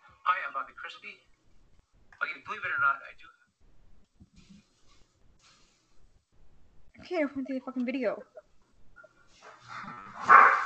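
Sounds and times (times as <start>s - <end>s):
speech: 0.6s - 1.4s, 2.2s - 3.4s, 7.0s - 8.3s
dogs barking: 9.6s - 10.6s.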